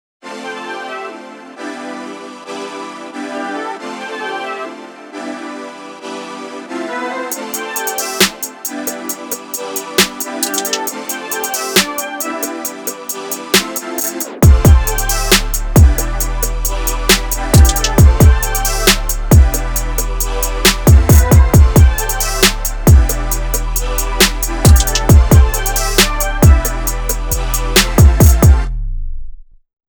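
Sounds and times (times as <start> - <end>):
hip hop sample: 7.3 - 28.6.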